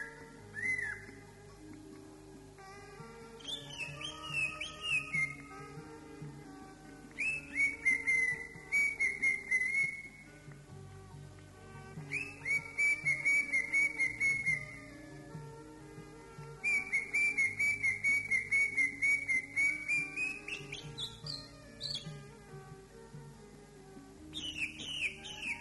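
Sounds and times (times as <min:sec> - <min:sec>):
Oriental magpie-robin delivering slurred falling whistles and fast chattering notes: 0:00.0 - 0:01.1, 0:03.4 - 0:05.5, 0:07.2 - 0:10.2, 0:12.1 - 0:14.8, 0:16.6 - 0:22.1, 0:24.4 - 0:25.5.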